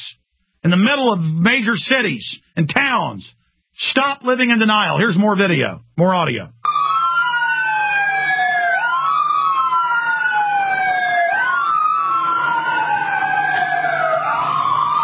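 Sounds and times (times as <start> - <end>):
speech: 0.6 - 6.6
ambulance siren driving by: 6.6 - 15.0.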